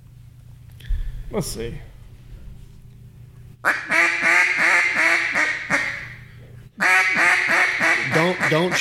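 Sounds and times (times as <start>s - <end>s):
speech: 1.3s - 1.9s, 8.5s - 8.7s
duck call imitating a boss hen mallard: 3.6s - 6.2s, 6.8s - 8.7s.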